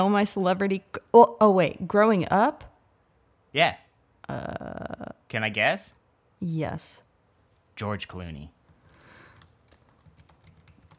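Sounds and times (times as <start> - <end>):
speech: 0.0 - 2.7, 3.5 - 7.0, 7.8 - 8.6
someone typing a search on a computer keyboard: 8.7 - 10.9.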